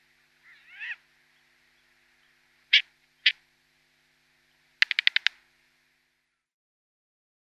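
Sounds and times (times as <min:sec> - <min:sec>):
short-eared owl downy young giving wheezy calls, harsh bursts and rattling notes: 0:00.0 - 0:03.4, 0:04.8 - 0:05.4.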